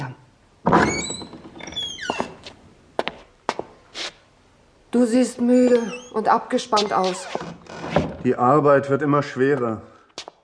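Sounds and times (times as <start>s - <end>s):
door knocks and clunks as it swings: 0.6s - 2.4s, 6.8s - 8.3s
door opening: 0.6s - 2.5s, 5.6s - 8.4s
door hinges creaking: 0.7s - 2.5s, 5.6s - 8.4s
speech: 4.9s - 9.9s.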